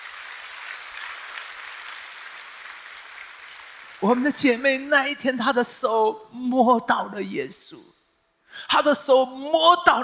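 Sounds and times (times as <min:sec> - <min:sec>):
large crowd applauding: 0:00.0 - 0:04.3
speech: 0:04.0 - 0:07.9, 0:08.6 - 0:10.0.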